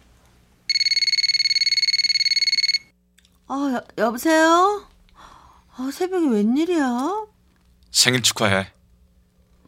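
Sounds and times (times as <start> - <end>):
telephone ringing with rapid electronic trill: 0.7 - 2.9
speech: 3.5 - 4.9, 5.8 - 7.3, 7.9 - 8.8.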